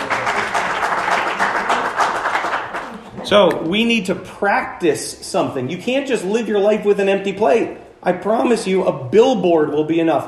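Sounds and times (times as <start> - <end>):
crowd applauding: 0.0 - 3.6
speech: 3.3 - 10.2.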